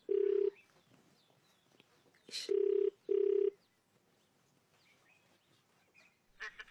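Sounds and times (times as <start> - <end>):
outgoing phone call ringback tone beeps: 0.0 - 0.6, 2.5 - 3.6.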